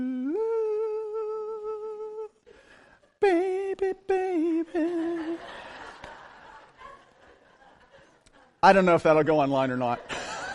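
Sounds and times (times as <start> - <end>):
solo voice imitating the luring call of the mythical sirens: 0.0 - 2.5, 3.1 - 5.6
speech: 3.2 - 3.5, 8.6 - 10.2
laughter: 4.8 - 8.9, 9.5 - 10.5.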